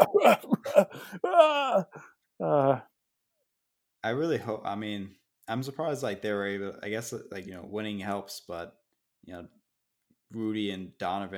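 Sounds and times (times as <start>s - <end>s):
person faking exaggerated coughing: 0.0s - 1.9s
speech: 0.1s - 2.8s, 4.0s - 9.6s, 10.3s - 11.3s.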